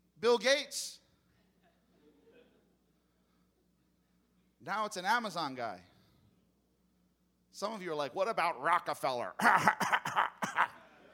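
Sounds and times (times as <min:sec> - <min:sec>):
speech: 0:00.2 - 0:01.0, 0:04.6 - 0:05.9, 0:07.6 - 0:10.8
man faking a dry raspy old-man cough: 0:09.4 - 0:10.8.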